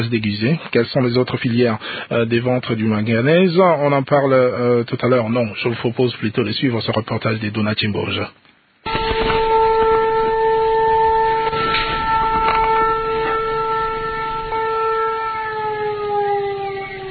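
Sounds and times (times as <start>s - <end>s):
speech: 0.0s - 8.5s
faint noise: 0.0s - 17.1s
mining company industrial siren wailing: 8.9s - 17.1s.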